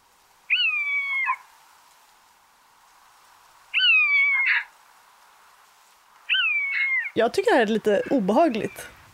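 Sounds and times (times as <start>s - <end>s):
faint hiss: 0.0s - 9.1s
common buzzard mewing calls: 0.5s - 1.4s, 3.7s - 4.7s, 6.3s - 7.2s
speech: 7.2s - 9.0s.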